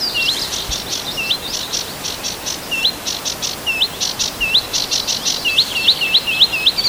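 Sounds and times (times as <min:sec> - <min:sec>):
Sedge warbler song of dry clicks and sliding whistled notes: 0:00.0 - 0:06.8.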